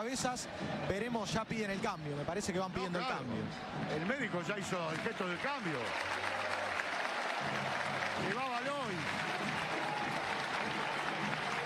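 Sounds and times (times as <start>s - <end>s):
speech: 0.0s - 6.4s, 7.4s - 9.5s
stadium crowd noise: 0.0s - 11.6s
stadium crowd applauding a footballer substituted off the pitch: 3.9s - 11.6s.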